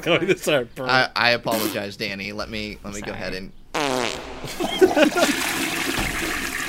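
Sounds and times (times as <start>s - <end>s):
laughter: 0.0s - 0.6s, 4.4s - 5.8s
speech: 0.0s - 5.8s
toilet flushing: 4.7s - 6.6s.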